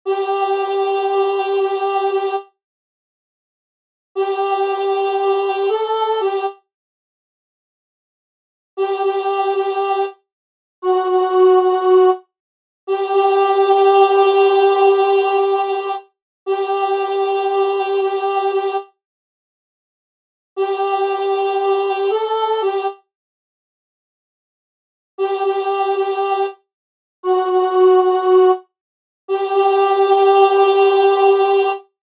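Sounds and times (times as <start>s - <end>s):
chorus voices singing: 0.1s - 2.4s, 4.2s - 6.6s, 8.8s - 10.2s, 10.8s - 12.2s, 12.9s - 18.8s, 20.6s - 23.0s, 25.2s - 26.6s, 27.2s - 28.6s, 29.3s - 31.9s.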